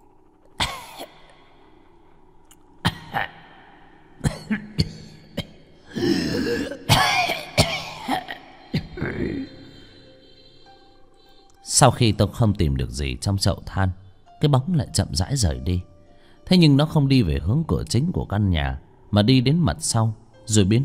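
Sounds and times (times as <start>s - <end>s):
person dry coughing at night: 0.6s - 1.3s, 2.8s - 3.5s, 4.2s - 10.2s
speech: 11.8s - 15.9s, 16.5s - 20.8s.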